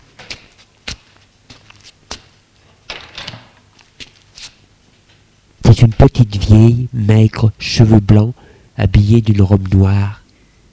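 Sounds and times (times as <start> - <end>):
man's footsteps crossing a room: 0.0 - 2.4, 3.3 - 4.6
door being opened: 2.9 - 3.6
speech: 5.8 - 10.2.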